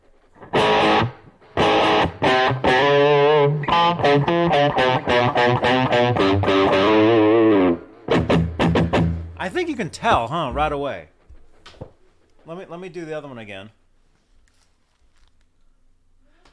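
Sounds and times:
electric guitar with heavy reverb playing chords: 0.4s - 9.4s
speech: 9.9s - 11.2s, 12.5s - 13.8s.

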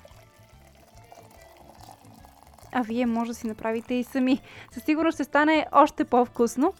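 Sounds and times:
low rhythmic gurgle of poured water: 0.0s - 4.8s
mushroom soaking water poured into a bowl of vegetable broth: 0.0s - 6.7s
speech: 2.7s - 6.7s.

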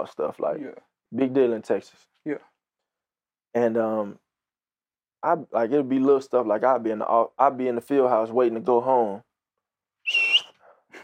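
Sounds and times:
speech: 0.0s - 2.5s, 3.5s - 4.2s, 5.2s - 9.3s
short sharp human whistle calling someone in at a high school football field house: 10.1s - 10.6s.

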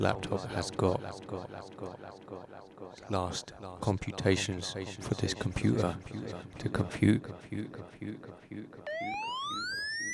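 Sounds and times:
speech: 0.0s - 9.9s
siren sound effect with steady tone sweeping upward in pitch: 8.9s - 10.1s.

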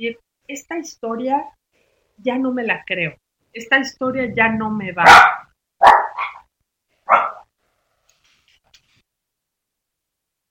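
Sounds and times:
speech: 0.0s - 1.6s, 2.2s - 5.9s
dogs barking at home frightened by thunder: 5.0s - 6.5s, 7.1s - 7.5s.

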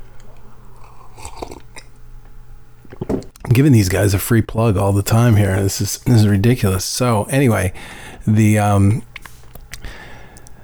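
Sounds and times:
sipping and slurping coffee: 0.0s - 3.7s, 5.1s - 10.6s
speech: 3.6s - 9.1s.

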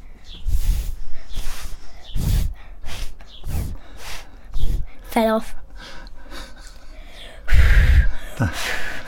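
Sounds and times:
person blowing loud puffs of air into a microphone: 0.4s - 5.0s, 7.5s - 9.0s
speech: 5.2s - 5.6s, 8.4s - 8.8s.

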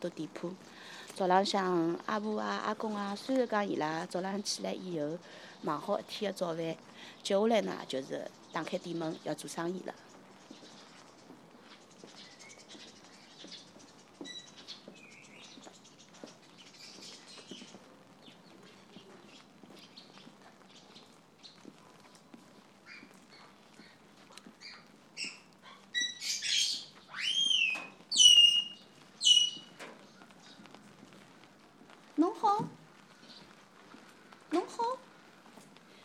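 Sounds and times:
speech: 0.0s - 10.0s
soft scattered patter: 0.0s - 36.0s
pet bird kept by teahouse owner chirping and whistling on a busy street: 24.6s - 29.8s.

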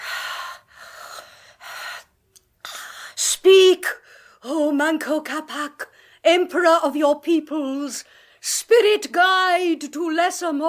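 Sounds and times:
woman's heavy rasping gasping breaths: 0.0s - 3.2s
speech: 4.4s - 10.6s.

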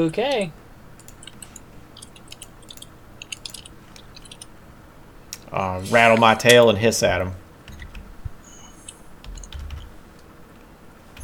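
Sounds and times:
speech: 0.0s - 0.6s, 5.5s - 7.4s
low hum: 0.0s - 11.2s
typing on a computer keyboard: 1.0s - 4.5s, 8.8s - 10.0s.

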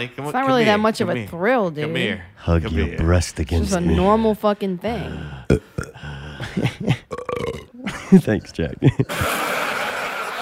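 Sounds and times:
speech: 0.0s - 7.0s, 8.1s - 9.4s
long loud burp: 5.4s - 6.2s, 7.1s - 7.8s
laughter: 6.0s - 10.4s.

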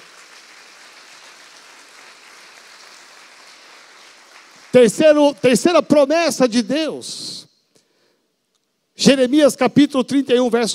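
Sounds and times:
audience applauding: 0.0s - 5.7s
speech: 4.7s - 7.4s, 9.0s - 10.7s.

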